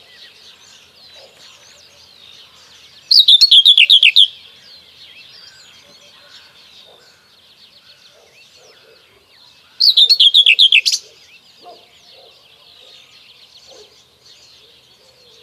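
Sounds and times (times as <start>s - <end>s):
faint background birds: 0.0s - 15.4s
Common whitethroat singing scratchy chattering phrase: 3.1s - 4.4s, 9.8s - 11.0s.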